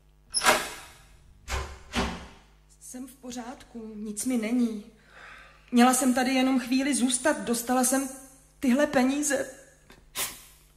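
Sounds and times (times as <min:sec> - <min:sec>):
door being forced open with heavy impacts: 0:00.3 - 0:02.4
speech: 0:02.9 - 0:05.0, 0:05.7 - 0:09.6.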